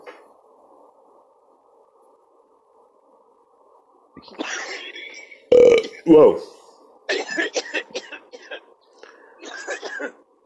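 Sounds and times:
speech: 4.2 - 6.6
harsh raspy coughing after smoking: 4.3 - 4.9, 7.1 - 8.7, 9.4 - 10.2.

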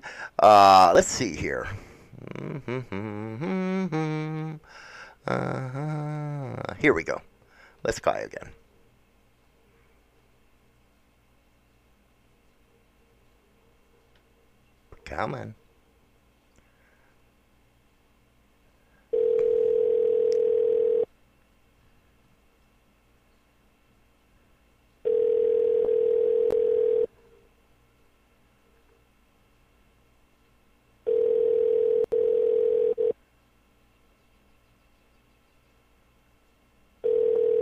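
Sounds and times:
speech: 0.4 - 8.6, 15.1 - 15.6
unanswered telephone ringback tone: 19.1 - 21.1, 25.1 - 27.1, 31.1 - 33.2, 37.0 - 37.6.

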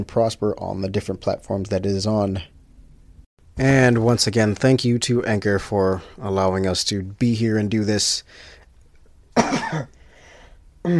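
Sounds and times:
speech: 0.0 - 2.6, 3.6 - 8.6, 9.4 - 10.0
harsh raspy cough from food stuck in the throat: 9.4 - 10.0.

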